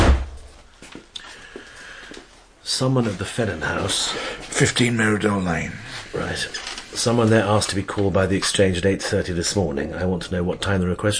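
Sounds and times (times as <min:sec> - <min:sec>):
office door shutting with a heavy thud: 0:00.0 - 0:00.5
speech: 0:02.7 - 0:11.1.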